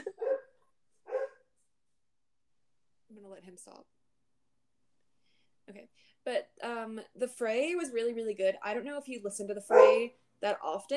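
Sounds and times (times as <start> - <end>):
pet dog barking: 0.2 - 0.5, 1.1 - 1.5, 9.7 - 10.1
speech: 3.4 - 4.0, 5.7 - 10.9.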